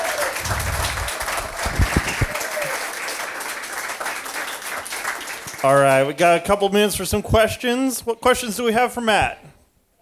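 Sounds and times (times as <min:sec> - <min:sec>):
room full of people applauding a printmaking artist after his talk: 0:00.0 - 0:06.0
speech: 0:05.6 - 0:09.5.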